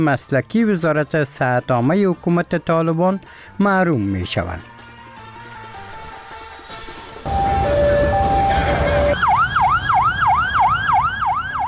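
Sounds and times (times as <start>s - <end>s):
speech: 0.0s - 4.7s
ambulance siren: 7.2s - 11.6s
low rumble of traffic: 7.2s - 11.6s.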